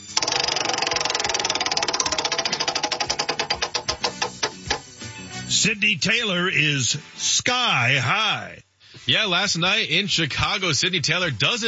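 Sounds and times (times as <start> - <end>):
hand-spun prize wheel clicker ticking: 0.0 - 4.8
speech: 5.6 - 11.6.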